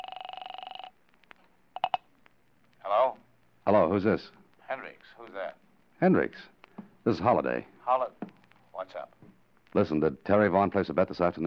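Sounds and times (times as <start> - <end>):
rapid buzzing pulsed tone of a telephone number being dialed: 0.0 - 1.0, 1.8 - 2.0
quiet scattered clicks: 0.0 - 11.4
speech: 3.7 - 4.4, 5.1 - 8.2, 9.7 - 11.4.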